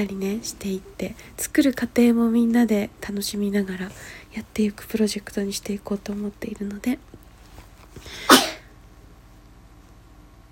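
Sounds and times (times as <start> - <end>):
speech: 0.0 - 7.1, 8.0 - 8.4
faint breaths: 3.9 - 4.4
sneeze: 8.1 - 8.7.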